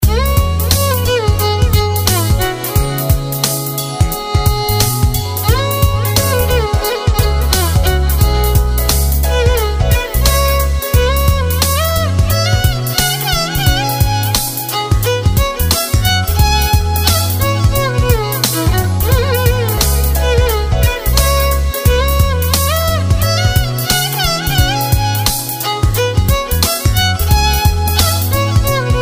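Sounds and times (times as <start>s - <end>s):
electronica violin beats: 0.0s - 29.0s.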